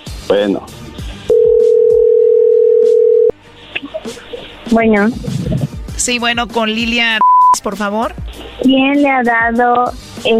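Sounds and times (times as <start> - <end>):
speech: 0.3 - 0.9, 4.7 - 10.3
telephone dial tone before redialling: 1.3 - 3.3.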